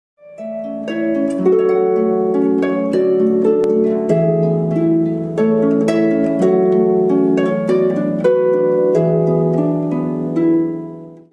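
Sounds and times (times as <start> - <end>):
solo harp playing: 0.2 - 11.3.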